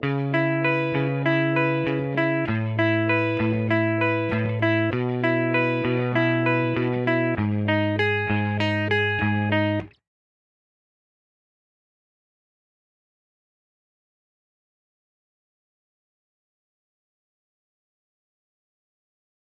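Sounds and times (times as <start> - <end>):
dry guitar loop: 0.0 - 10.0.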